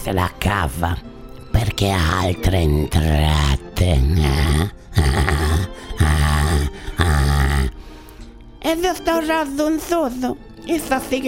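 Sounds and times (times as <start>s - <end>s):
speech: 0.0s - 6.0s, 8.6s - 11.2s
dog growling and barking: 3.4s - 7.8s.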